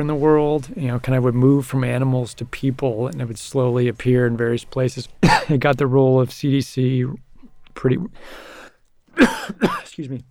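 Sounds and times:
speech: 0.0 - 7.2, 7.8 - 8.6, 9.2 - 10.3
man coughing: 5.2 - 5.6, 9.2 - 10.0.

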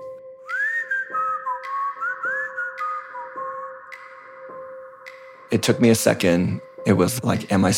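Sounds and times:
person whistling an old-timey song: 0.4 - 4.5
speech: 5.6 - 7.7.

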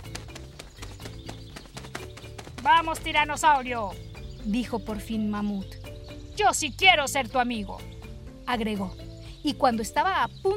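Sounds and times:
pterodactyl large wings flapping: 0.0 - 3.1
speech: 2.6 - 5.8, 6.4 - 7.9, 8.5 - 10.5.

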